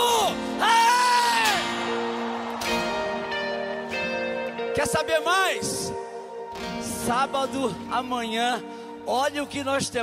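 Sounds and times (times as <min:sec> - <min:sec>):
audience shouting and cheering: 0:00.0 - 0:06.8
speech: 0:04.8 - 0:05.9, 0:07.1 - 0:10.0.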